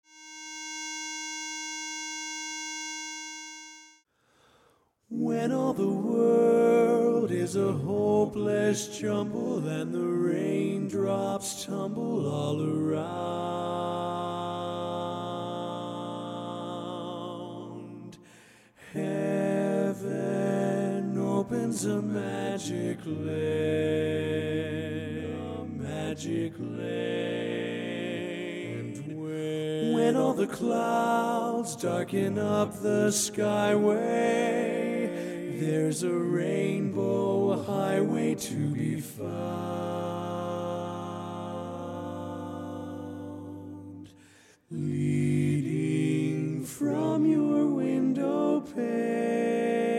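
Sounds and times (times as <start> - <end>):
lead voice singing a cappella: 5.1 - 49.9.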